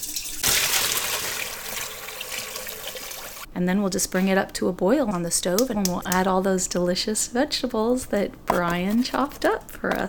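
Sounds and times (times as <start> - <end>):
stock poured through a colander: 0.0 - 3.5
speech: 3.6 - 10.0.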